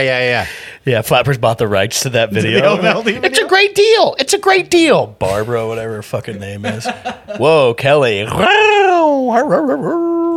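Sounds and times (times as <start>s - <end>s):
speech: 0.0s - 10.1s
laughter: 6.4s - 7.7s
dog howling and whimpering: 8.4s - 10.3s.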